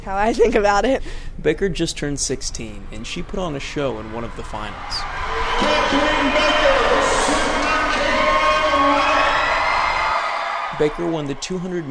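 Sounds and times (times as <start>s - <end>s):
speech: 0.0s - 7.4s, 10.8s - 11.9s
large crowd roaring and cheering at an indoor swim meet: 2.9s - 11.9s.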